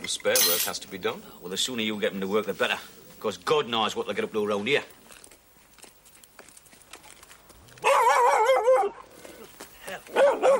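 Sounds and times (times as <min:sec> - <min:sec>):
speech: 0:00.1 - 0:05.0
attack dog barking and howling: 0:07.8 - 0:09.0, 0:10.1 - 0:10.5.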